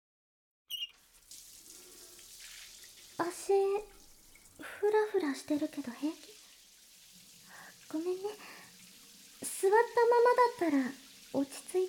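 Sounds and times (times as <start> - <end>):
squeak: 0.7 - 1.0
hot water running from a shower for rinsing: 0.7 - 11.8
speech: 4.8 - 6.4, 7.9 - 8.6, 9.6 - 11.8.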